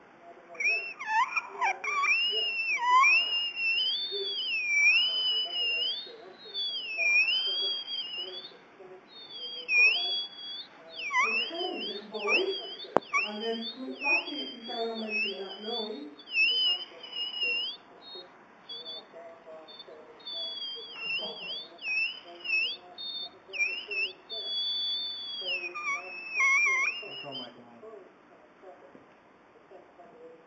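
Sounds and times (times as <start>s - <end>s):
whiteboard marker squeaking: 0.6s - 8.4s, 9.2s - 17.8s, 20.3s - 27.4s.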